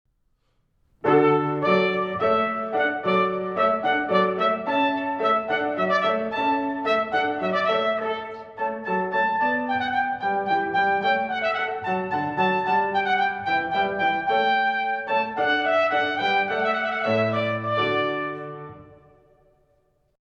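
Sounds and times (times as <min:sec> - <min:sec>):
piano: 0:00.9 - 0:20.2
trumpet: 0:01.0 - 0:19.7.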